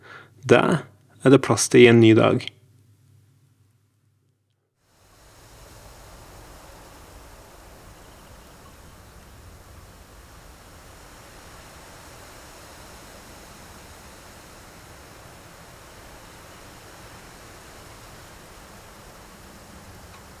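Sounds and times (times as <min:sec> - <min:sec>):
speech: 0:00.4 - 0:02.6
gentle summer breeze blowing: 0:04.9 - 0:20.3.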